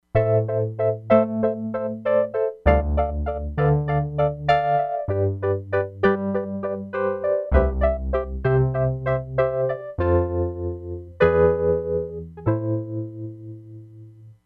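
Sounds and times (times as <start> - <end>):
Wurlitzer electric piano on Crumar Bit 99: 0.0 - 14.3.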